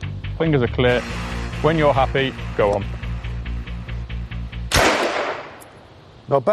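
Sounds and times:
speech: 0.4s - 2.9s, 6.3s - 6.5s
Sten submachine gun firing: 4.7s - 5.7s
loud sharp gunshot crack: 4.7s - 5.7s.

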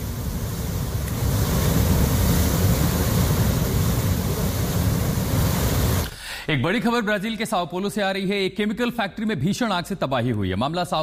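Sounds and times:
rushing floodwater after a flash flood: 0.0s - 6.2s
speech: 6.5s - 11.0s.

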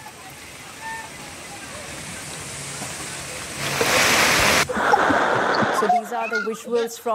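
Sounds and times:
heavy rain pouring onto a waterlogged street: 0.0s - 5.8s
speech: 6.2s - 7.1s.

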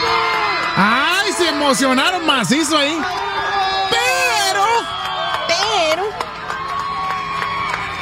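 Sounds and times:
large crowd cheering and shouting: 0.0s - 7.9s
speech: 0.8s - 3.4s.

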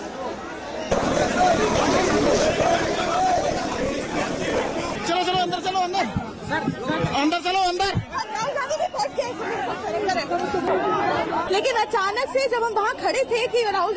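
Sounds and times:
crowd shouting and chattering at a political march stampede: 0.0s - 13.9s
people calling out urgently: 0.9s - 5.1s
speech: 11.6s - 13.9s.

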